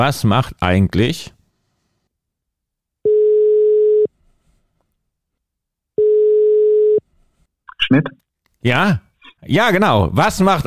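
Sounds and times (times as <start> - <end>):
speech: 0.0 - 1.4, 7.9 - 10.6
electronic ringback tone of an outgoing phone call: 3.1 - 4.1, 6.0 - 7.0.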